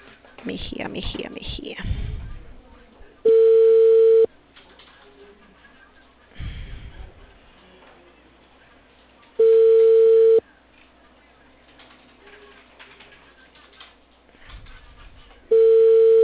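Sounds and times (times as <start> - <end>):
speech: 0.4 - 2.0
telephone ringing tone of an outgoing call: 3.3 - 4.3, 9.4 - 10.4, 15.5 - 16.2.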